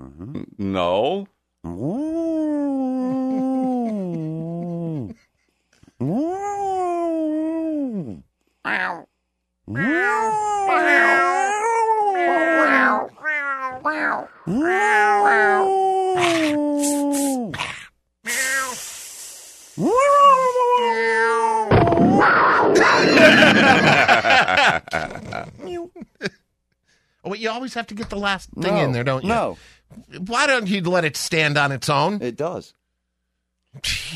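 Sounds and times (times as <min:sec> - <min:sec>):
speech: 0:00.3 - 0:02.0, 0:27.7 - 0:32.8
person imitating a cat meowing: 0:01.7 - 0:05.2, 0:06.0 - 0:09.0, 0:09.7 - 0:17.6, 0:18.3 - 0:18.9, 0:19.8 - 0:23.3
laughter: 0:03.0 - 0:05.2, 0:22.8 - 0:26.3
harsh noisy hiss-like burst from a person imitating a cat: 0:18.3 - 0:19.8.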